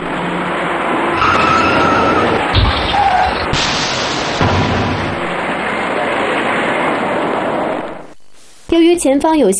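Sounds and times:
traffic noise: 0.0 - 8.2
car tires squealing under hard braking: 0.3 - 7.6
rear-end car crash thud: 1.2 - 5.5
speech: 9.0 - 9.5.

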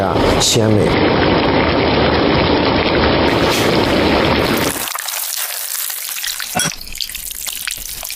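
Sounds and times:
speech: 0.4 - 1.4
eel bones crackling and popping in a hot pan: 0.9 - 8.1
eel bones sizzling as they fry in a hot pan for broth: 3.3 - 8.1.

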